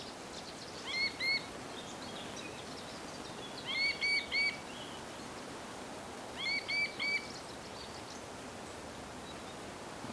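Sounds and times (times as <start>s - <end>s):
steady background hiss: 0.0s - 10.1s
Little grebe Tachybaptus ruficollis giving high squeaky calls: 0.8s - 1.4s, 3.6s - 4.6s.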